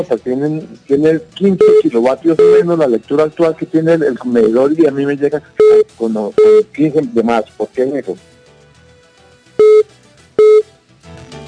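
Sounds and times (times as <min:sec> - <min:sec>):
speech: 0:00.0 - 0:08.3
call-waiting tone on a telephone line: 0:01.6 - 0:02.7, 0:05.6 - 0:06.7, 0:09.6 - 0:10.7.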